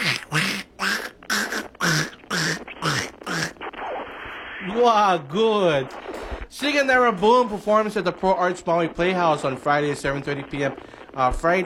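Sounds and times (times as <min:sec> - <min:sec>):
voice imitating a cartoon duck choking on a piece of apple: 0:00.0 - 0:03.7
speech: 0:04.7 - 0:11.6.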